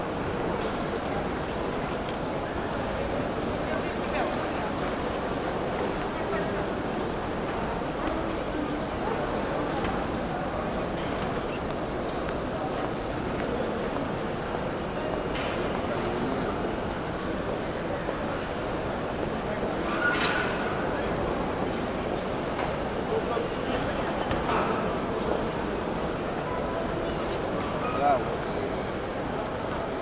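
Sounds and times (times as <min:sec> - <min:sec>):
murmur of overlapping voices in an airport terminal: 0:00.0 - 0:30.0.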